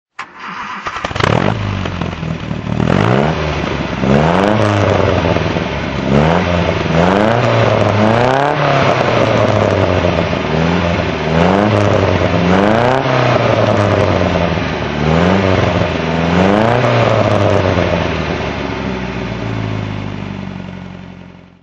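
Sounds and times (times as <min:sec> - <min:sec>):
MG MGA 1500 engine throttle: 0:00.3 - 0:21.4.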